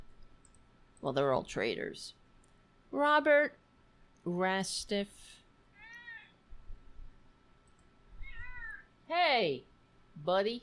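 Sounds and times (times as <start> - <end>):
speech: 1.0 - 2.2, 2.9 - 3.6, 4.2 - 5.4, 9.1 - 10.6
male cat meowing angrily when petting stops: 5.8 - 6.3, 8.2 - 8.8.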